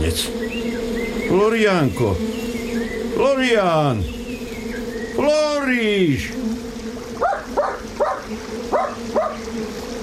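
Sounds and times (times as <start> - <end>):
speech: 0.1 - 2.4, 3.2 - 4.2, 5.2 - 6.4
small dog giving high-pitched yapping barks: 7.2 - 9.4.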